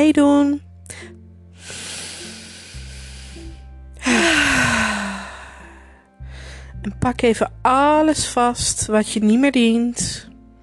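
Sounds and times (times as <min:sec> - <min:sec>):
speech: 0:00.0 - 0:01.2, 0:06.8 - 0:10.3
deep breathing in and out during a guided spring relaxation exercise: 0:00.9 - 0:06.8.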